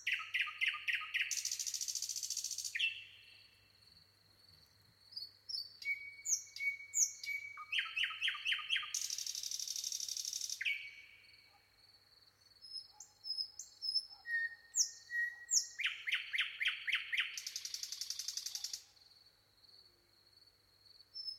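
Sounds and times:
common nightingale singing, Luscinia megarhynchos: 0.0s - 3.6s, 5.2s - 11.5s, 12.4s - 18.9s, 21.2s - 21.3s.

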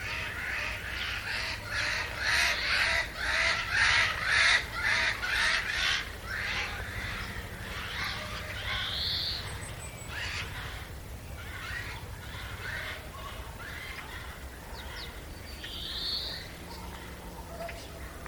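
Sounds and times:
Eurasian jay (Garrulus glandarius) uttering grating rasping notes: 0.0s - 18.2s.

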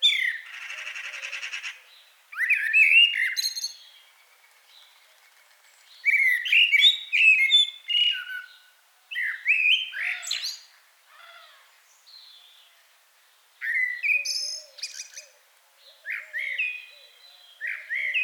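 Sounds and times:
Common blackbird Turdus merula singing mellow fluted phrases: 0.0s - 5.0s, 5.8s - 10.7s, 13.6s - 18.2s.

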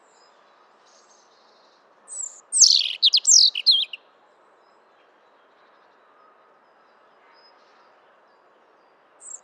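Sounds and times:
European robin Erithacus rubecula singing high thin notes: 0.0s - 4.0s.

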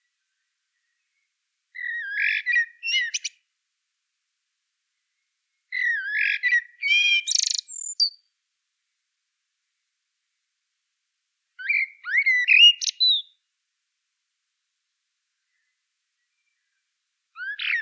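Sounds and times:
common blackbird singing: 1.8s - 3.4s, 5.7s - 8.2s, 11.6s - 13.4s, 17.4s - 17.8s.

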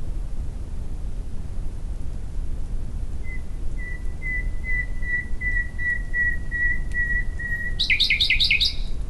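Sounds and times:
low background noise: 0.0s - 9.0s
common nightingale Luscinia megarhynchos singing: 3.2s - 9.0s.

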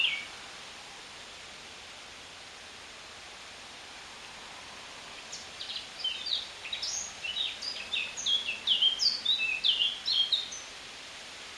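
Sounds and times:
Eurasian blackcap Sylvia atricapilla singing: 0.0s - 0.3s, 5.3s - 10.7s.

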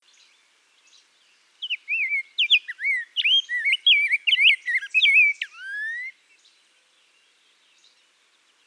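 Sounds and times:
rose-breasted grosbeak whistled song in Minnesota: 0.0s - 8.6s.

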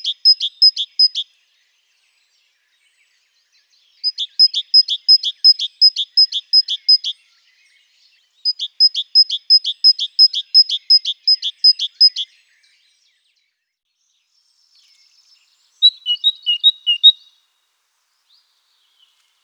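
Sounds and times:
great tit Parus major singing: 0.0s - 1.3s, 3.8s - 7.8s, 8.4s - 12.6s, 14.9s - 17.4s.

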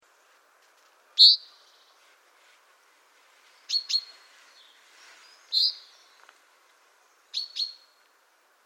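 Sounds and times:
common chaffinch Fringilla coelebs calling: 1.2s - 1.9s, 3.6s - 6.2s, 7.3s - 8.0s.

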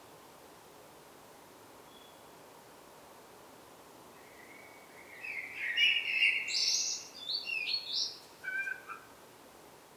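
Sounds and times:
common blackbird Turdus merula singing: 5.1s - 8.8s.

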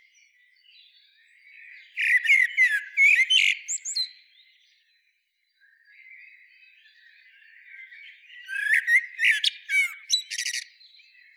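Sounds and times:
common blackbird Turdus merula singing warbled phrases with scratchy high notes: 1.6s - 4.5s, 5.9s - 11.3s.

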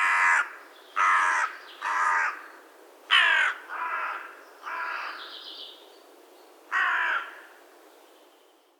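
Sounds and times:
Carrion crow Corvus corone giving a harsh hoarse caw: 0.0s - 5.3s, 6.7s - 7.6s.

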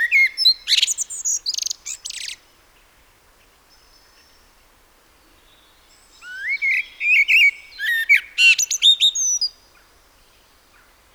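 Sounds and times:
common blackbird song, Turdus merula: 0.0s - 2.4s, 5.3s - 11.1s.

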